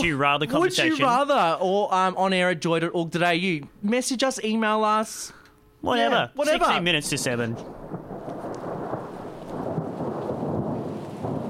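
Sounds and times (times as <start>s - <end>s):
speech: 0.0s - 7.8s
dense rain hiss: 6.6s - 11.4s
deep rolling thunder: 6.8s - 11.4s.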